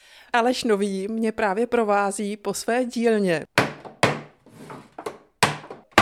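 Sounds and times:
speech: 0.3 - 3.6
wooden hoop hammered onto a wooden tub in a cooper's workshop: 3.6 - 4.4, 5.0 - 6.0
softer scraping thud: 3.8 - 6.0.

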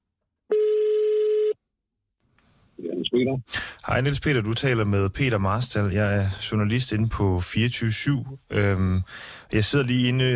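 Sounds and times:
telephone ringback tone before call answered: 0.5 - 1.6
speech: 3.1 - 10.3.

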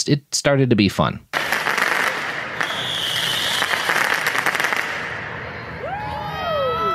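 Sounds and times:
speech: 0.0 - 1.3
fireworks bursting and crackling at a street protest: 1.3 - 6.3
shrill whistling fireworks tones sweeping through the air: 1.4 - 6.9
noisy crowd at a street protest: 1.8 - 6.9.

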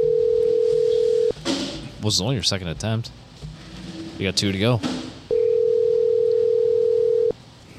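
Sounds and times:
telephone ringing tone on a call to a mobile phone: 0.0 - 1.3, 5.3 - 7.4
speech: 2.0 - 3.3, 4.2 - 5.0.

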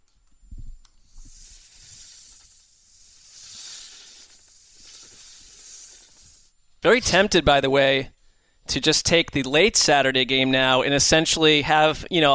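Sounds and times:
snake hissing: 1.1 - 6.6
speech: 6.8 - 8.1, 8.7 - 12.3.

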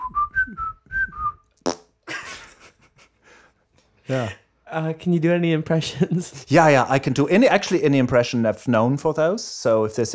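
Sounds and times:
person whistling: 0.0 - 1.5
speech: 4.1 - 10.1.

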